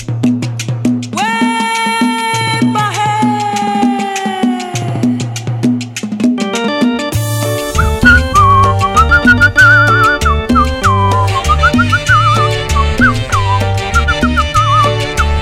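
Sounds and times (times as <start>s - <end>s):
guajira song with steady bass and bright percussion: 0.0s - 15.4s
person whistling a wavering, lilting melody: 7.7s - 15.4s.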